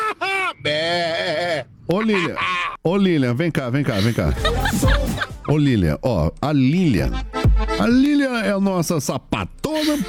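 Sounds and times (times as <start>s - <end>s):
speech: 0.6s - 1.2s, 1.9s - 10.0s
human voice imitating a goat bleating: 0.6s - 2.8s
laughter: 3.9s - 5.6s.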